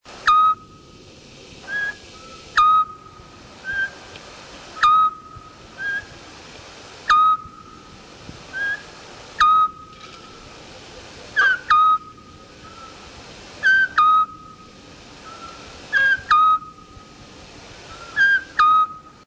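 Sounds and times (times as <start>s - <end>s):
Otus scops owl calling: 0.2s - 0.8s, 1.6s - 4.0s, 4.8s - 6.2s, 7.0s - 7.9s, 8.5s - 10.4s, 11.3s - 17.0s, 17.8s - 19.2s.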